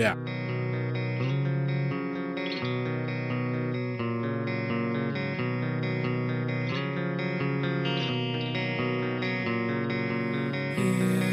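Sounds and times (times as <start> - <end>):
steady bass: 0.0 - 0.6, 10.3 - 11.3
clean electric guitar playing flowing arpeggiated pattern with chorus-like shimmer: 0.0 - 11.3.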